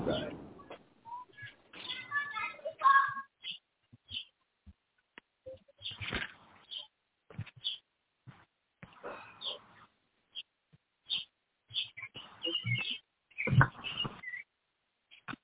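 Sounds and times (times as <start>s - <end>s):
pet birds chirping and squawking: 1.1s - 4.4s, 5.5s - 7.9s, 9.2s - 14.5s, 15.1s - 15.4s.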